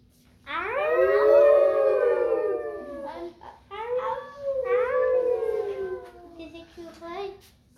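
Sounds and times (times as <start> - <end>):
wolves howling: 0.7 - 3.2, 4.0 - 6.3.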